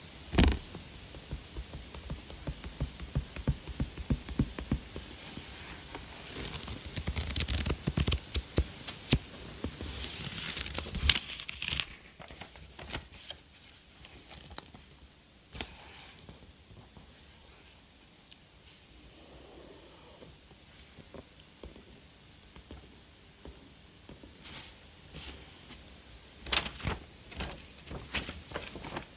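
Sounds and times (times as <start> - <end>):
quiet hiss: 0.0 - 29.1
book pages turned by people wearing gloves: 0.3 - 14.9, 26.4 - 29.1.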